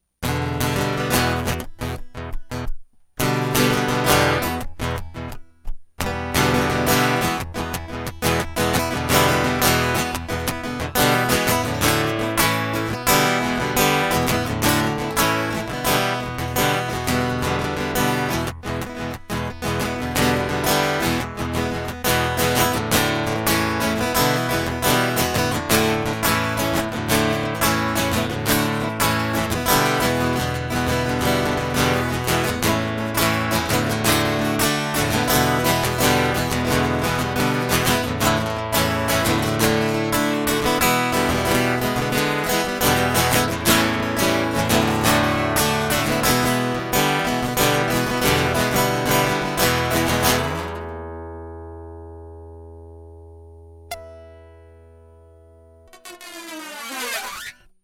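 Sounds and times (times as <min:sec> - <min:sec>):
blues guitar loop: 0:00.0 - 0:53.1, 0:53.7 - 0:57.6.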